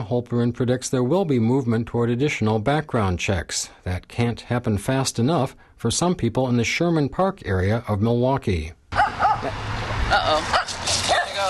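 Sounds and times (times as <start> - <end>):
speech: 0.0 - 10.7
steady outdoor noise: 0.0 - 11.4
dog barking and yipping: 8.9 - 9.7, 10.4 - 11.4.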